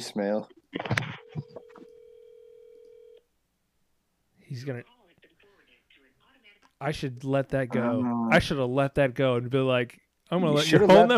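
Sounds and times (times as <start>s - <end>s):
speech: 0.0s - 1.1s, 4.5s - 4.9s, 6.8s - 11.1s
telephone ringback tone on an outgoing call: 1.2s - 3.2s.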